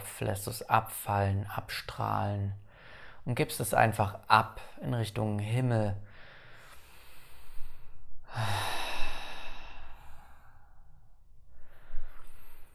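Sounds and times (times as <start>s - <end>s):
speech: 0.2s - 2.6s, 3.2s - 6.1s, 8.3s - 8.7s
deep forceful breathing during a guided cleansing breath exercise: 6.0s - 12.7s.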